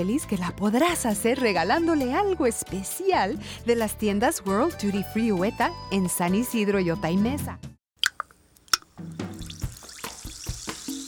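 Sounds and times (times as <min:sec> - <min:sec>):
speech: 0:00.0 - 0:07.7
sparkling mineral water fizzing in a glass: 0:08.0 - 0:11.0
sparkling mineral water pouring into a glass: 0:08.7 - 0:11.0.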